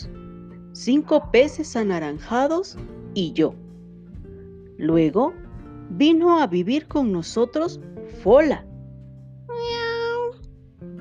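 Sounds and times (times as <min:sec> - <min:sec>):
speech: 0:00.8 - 0:03.6, 0:04.8 - 0:08.7
red female cat meowing: 0:09.5 - 0:10.4.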